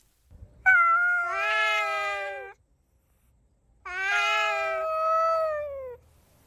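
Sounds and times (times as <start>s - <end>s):
stray cat yowling: 0.6s - 2.6s, 3.9s - 6.0s.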